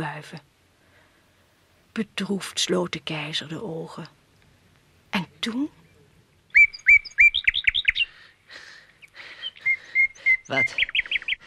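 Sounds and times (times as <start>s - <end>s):
speech: 0.0s - 0.5s, 2.0s - 4.2s, 5.1s - 5.8s, 10.5s - 10.9s
nightingale singing: 5.2s - 11.4s.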